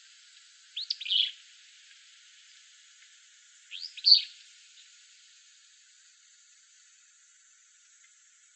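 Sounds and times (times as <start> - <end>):
willow flycatcher giving sharp buzzy high notes in Arizona: 0.8 - 1.4, 3.7 - 4.9.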